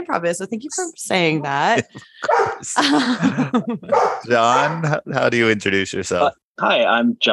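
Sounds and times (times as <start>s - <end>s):
speech: 0.0s - 7.3s
laughter: 1.6s - 6.2s
dog barking loud and yappy: 2.2s - 2.6s, 3.9s - 5.0s.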